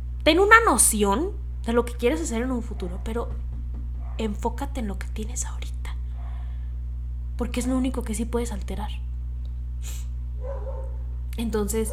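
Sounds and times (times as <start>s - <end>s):
steady low electrical hum: 0.0s - 11.9s
speech: 0.2s - 3.5s, 4.2s - 5.8s, 7.4s - 9.1s, 9.8s - 10.6s, 11.4s - 11.9s
dogs barking: 2.1s - 5.2s, 5.8s - 6.8s, 7.4s - 8.2s, 10.4s - 11.9s.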